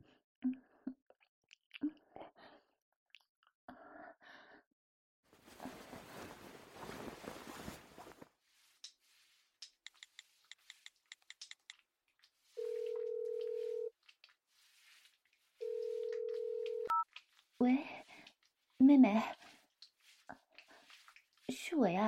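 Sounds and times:
rustling noise: 5.3s - 11.4s, 12.3s - 21.7s
telephone ringing tones: 12.6s - 13.9s, 15.6s - 17.0s
speech: 17.6s - 18.0s, 18.9s - 19.4s, 21.8s - 22.0s.

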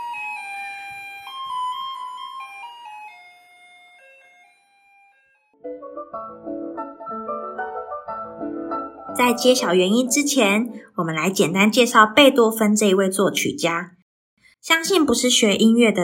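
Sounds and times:
garbage truck electronic piano jingle: 0.0s - 10.9s
speech: 6.0s - 7.4s, 9.2s - 14.0s, 14.6s - 16.0s.

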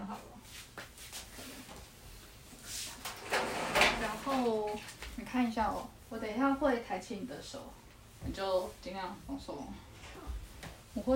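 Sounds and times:
chair scraping across a hard floor: 2.6s - 4.9s
speech: 5.3s - 9.9s, 11.0s - 11.1s.

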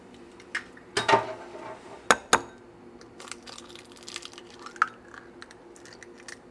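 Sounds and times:
utensils clinking against a bowl as eggs are beaten: 2.1s - 2.6s.

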